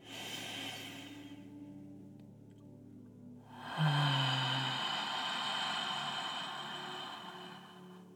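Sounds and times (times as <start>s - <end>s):
slow deep breath drawn in and let out during a guided breathing exercise: 0.0s - 1.7s, 3.5s - 8.1s
steady low musical drone: 0.0s - 8.1s.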